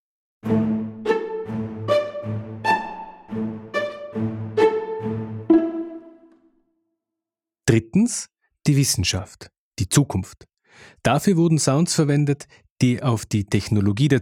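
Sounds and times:
pizzicato and plucked string instruments: 0.5 - 6.5
speech: 7.7 - 14.2.

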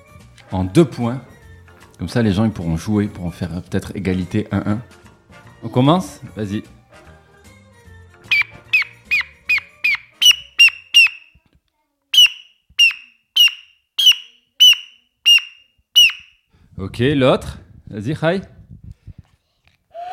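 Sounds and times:
speech: 0.5 - 1.3, 2.0 - 5.0, 5.6 - 6.8, 16.9 - 18.6
common blackbird calling with chinking notes: 8.3 - 11.3, 12.2 - 16.3.

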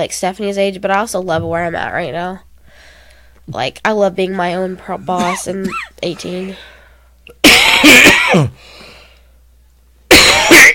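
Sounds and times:
speech: 0.0 - 2.5, 3.5 - 6.8, 7.8 - 8.9
loud harsh coughs into microphone: 5.2 - 6.3, 7.4 - 8.6, 10.1 - 10.7.

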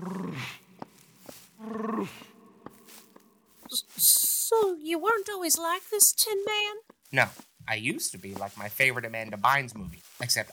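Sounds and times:
wild animal growling deeply: 0.0 - 0.6, 1.6 - 2.3
speech: 2.0 - 2.2, 4.9 - 10.5.

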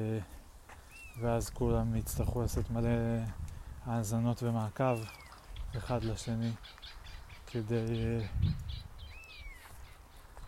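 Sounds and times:
speech: 0.0 - 0.4, 1.2 - 8.8
startled bird chirping and whistling: 0.8 - 1.2, 4.7 - 10.4.

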